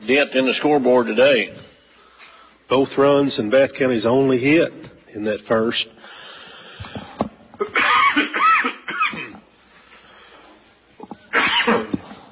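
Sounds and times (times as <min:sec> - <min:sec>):
speech: 0:00.0 - 0:01.7, 0:02.7 - 0:05.9
person sneezing: 0:07.6 - 0:09.4, 0:11.3 - 0:12.2.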